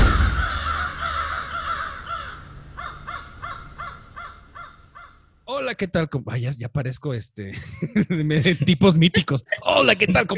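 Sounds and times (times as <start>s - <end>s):
crows cawing: 0.0s - 5.4s
speech: 5.7s - 10.3s
laughter: 7.5s - 10.3s.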